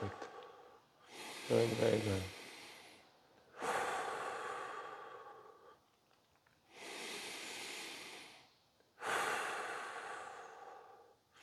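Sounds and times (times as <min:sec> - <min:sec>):
circular breathing in a guided breathing exercise: 0:00.0 - 0:05.9, 0:06.7 - 0:11.4
speech: 0:01.5 - 0:02.4.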